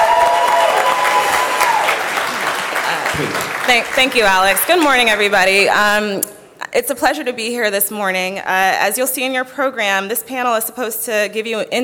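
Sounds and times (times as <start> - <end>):
audience applause at a morning conference panel: 0.0 - 5.5
speech: 3.7 - 11.8.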